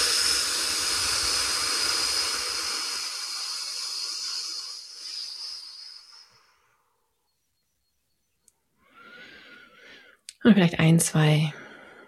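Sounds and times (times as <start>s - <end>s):
forceful exhale through the mouth during a guided breathing exercise: 0.0s - 7.0s, 8.8s - 10.2s
speech: 10.4s - 11.6s.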